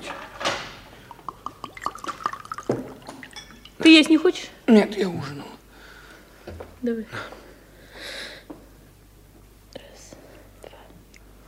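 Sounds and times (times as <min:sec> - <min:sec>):
water poured from carafe into cup: 0:01.0 - 0:04.2
speech: 0:03.9 - 0:05.6, 0:06.8 - 0:07.4.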